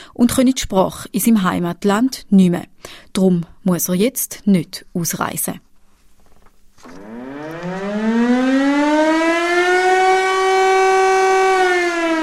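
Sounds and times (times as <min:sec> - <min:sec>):
speech: 0:00.2 - 0:05.7
civil defense siren wailing in a nationwide test in Switzerland: 0:07.0 - 0:12.2.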